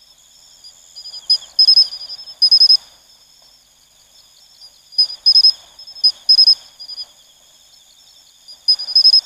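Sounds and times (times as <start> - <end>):
steady insect hum: 0.0 - 9.2
Matsumushi cricket bell-like pulses: 1.0 - 2.9, 5.0 - 7.2, 8.5 - 9.2.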